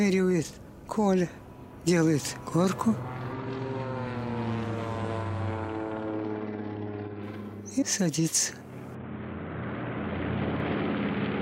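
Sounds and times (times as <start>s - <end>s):
speech: 0.0s - 3.2s, 7.8s - 8.6s
propeller airplane engine droning: 0.0s - 11.4s.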